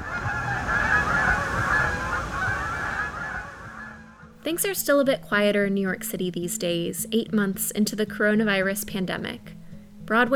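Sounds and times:
flock of geese honking: 0.0 - 4.3
speech: 4.4 - 10.3.

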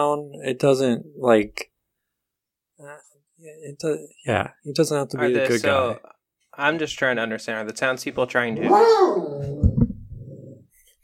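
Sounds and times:
speech: 0.0 - 1.7, 2.8 - 9.6
dog whimpering with a high tonal whine: 8.6 - 10.6.

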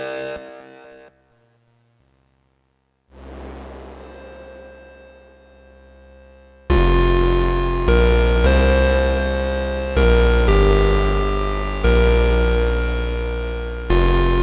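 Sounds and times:
synthesizer tones from oscillators and filters as held notes: 3.1 - 14.4.

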